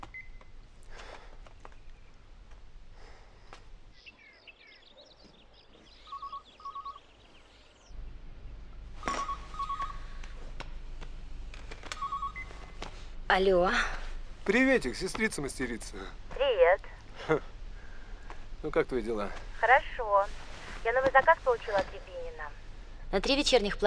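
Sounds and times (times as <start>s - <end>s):
paired telephone ringing tones: 6.0s - 7.0s, 9.1s - 10.1s, 11.9s - 12.8s
telephone keypad dialing beeps: 6.1s - 7.0s, 12.0s - 12.6s
speech: 13.3s - 17.5s, 18.6s - 23.8s.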